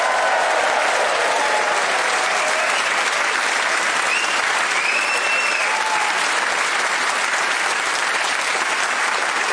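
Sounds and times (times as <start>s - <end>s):
studio audience clapping: 0.0s - 9.5s
studio audience whoops and whistles: 4.1s - 5.8s.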